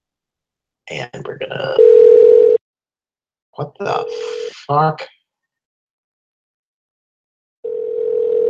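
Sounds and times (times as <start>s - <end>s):
speech: 0.9s - 2.6s, 3.6s - 5.1s
telephone ringing tone while dialing a business number: 1.8s - 2.6s, 7.6s - 8.4s.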